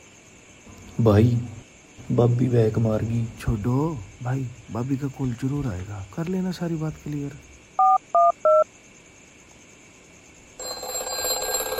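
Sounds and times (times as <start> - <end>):
speech: 1.0 - 7.5
steady buzzing phone line tone: 7.8 - 8.6, 10.6 - 11.7
touch-tone phone keypad beeps dialing a number: 7.8 - 8.6.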